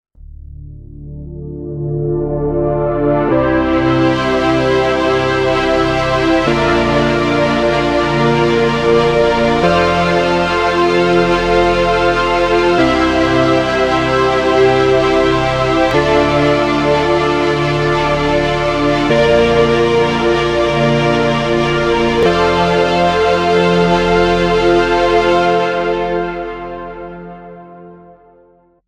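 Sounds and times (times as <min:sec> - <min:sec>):
Korg DSS-1 synthesizer sound: 0:00.3 - 0:28.0.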